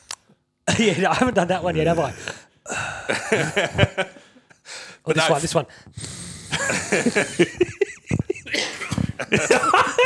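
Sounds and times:
speech: 0.7s - 2.4s, 3.1s - 4.2s, 5.0s - 6.1s, 6.7s - 7.8s, 9.2s - 10.0s
laughter: 2.9s - 4.5s, 6.5s - 10.0s
person coughing: 8.4s - 9.6s.

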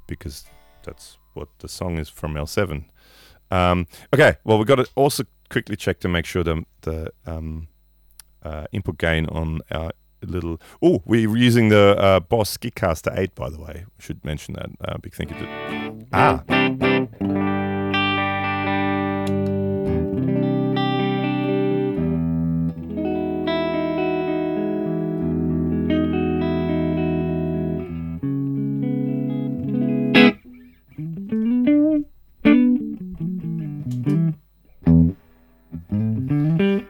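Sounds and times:
electric guitar through a clean amp channel with spring reverb: 0.0s - 1.4s, 15.2s - 36.8s
speech: 0.1s - 7.7s, 8.4s - 17.7s.

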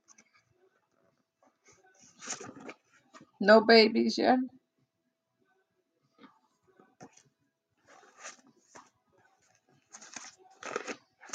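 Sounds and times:
crisp paper rustling and crinkling: 1.6s - 3.2s, 7.0s - 11.3s
speech: 3.4s - 4.6s.

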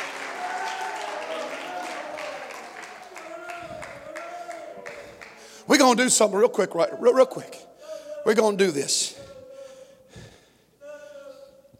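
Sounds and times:
audience clapping hands in praise to the Lord: 0.0s - 6.1s
voices calling out and cheering: 0.0s - 9.7s
speech: 5.7s - 9.2s.

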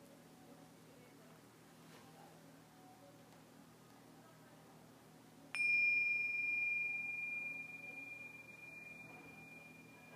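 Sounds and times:
meditation bell struck to begin a guided meditation: 5.6s - 10.1s.

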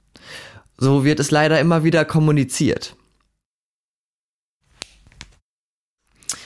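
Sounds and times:
speech: 0.8s - 3.0s
person cracking finger knuckles: 4.7s - 5.4s.

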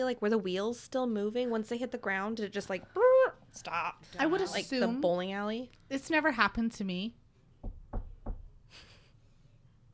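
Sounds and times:
speech: 0.0s - 7.8s
knocking on wood: 7.6s - 8.6s.

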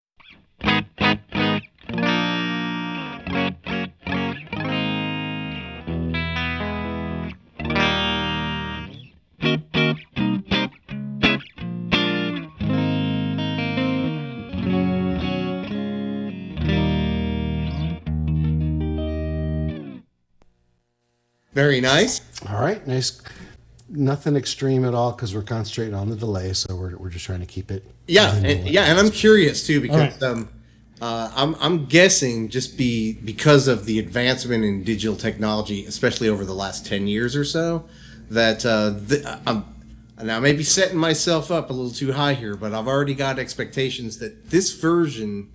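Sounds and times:
electric guitar through an amp with a clean dry tone, strummed chords: 0.6s - 20.0s
speech: 21.6s - 45.5s.

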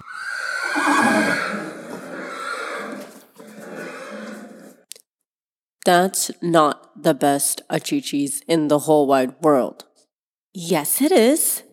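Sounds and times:
horse neighing loudly: 0.0s - 4.8s
speech: 5.8s - 9.9s, 10.6s - 11.7s.

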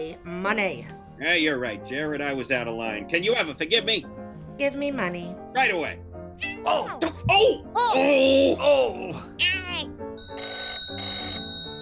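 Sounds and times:
speech: 0.0s - 9.9s
telephone ringing with electronic trill: 10.2s - 11.8s.

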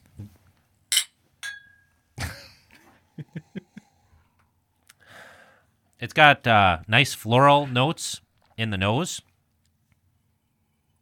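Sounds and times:
glasses clinking in a toast: 0.9s - 2.0s
speech: 6.0s - 9.3s.

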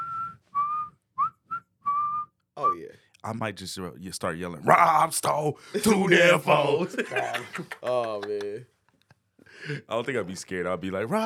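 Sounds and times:
person whistling a movie tune: 0.0s - 2.9s
speech: 2.8s - 8.8s, 9.6s - 11.2s
laughter: 5.8s - 8.8s.

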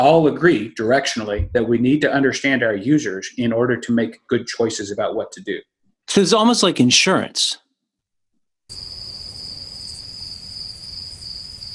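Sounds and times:
speech: 0.0s - 7.6s
cricket chirping: 8.7s - 11.7s
soft outdoor night noise: 8.7s - 11.7s.

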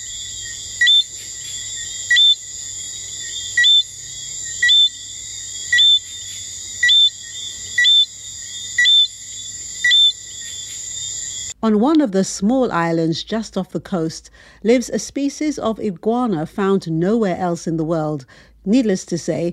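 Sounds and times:
St. Lucia tree frogs chirping: 0.0s - 11.6s
steady high whine of insects: 0.0s - 11.6s
speech: 11.7s - 19.5s.

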